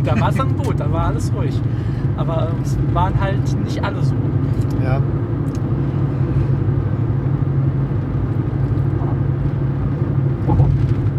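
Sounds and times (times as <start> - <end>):
speech: 0.0 - 5.3
car driving along a road, engine and tyre rumble: 0.0 - 11.1.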